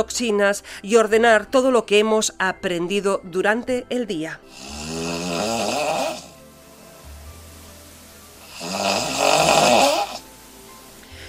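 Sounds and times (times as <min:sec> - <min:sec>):
speech: 0:00.0 - 0:05.6
person snoring loudly with rasping breaths: 0:04.5 - 0:06.5, 0:08.4 - 0:10.3.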